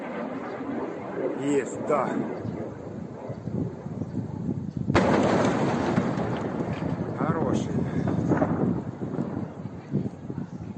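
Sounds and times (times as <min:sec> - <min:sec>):
wind buffeting the microphone: 0:00.0 - 0:10.7
speech: 0:01.4 - 0:02.5
explosion: 0:04.9 - 0:10.1.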